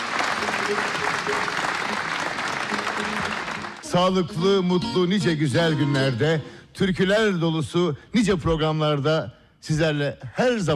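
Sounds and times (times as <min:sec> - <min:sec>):
audience applauding a choir: 0:00.0 - 0:04.2
speech: 0:00.7 - 0:01.7, 0:03.9 - 0:10.7.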